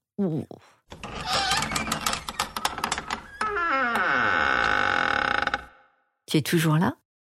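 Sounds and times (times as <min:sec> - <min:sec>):
speech: 0:00.2 - 0:00.8, 0:06.3 - 0:07.0
door creaking open: 0:00.9 - 0:05.9.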